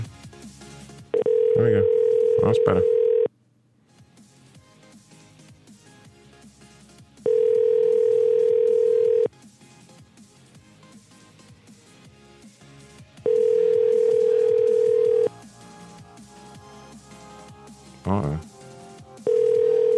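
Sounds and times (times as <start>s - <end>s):
outgoing-call telephone ringing tone: 1.1s - 3.3s, 7.2s - 9.3s, 13.2s - 15.3s, 19.2s - 19.9s
speech: 1.6s - 3.0s.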